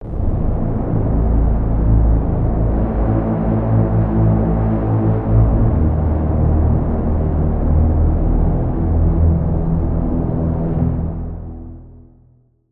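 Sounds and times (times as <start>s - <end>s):
synth pad made with Serum 2: 0.0s - 12.1s.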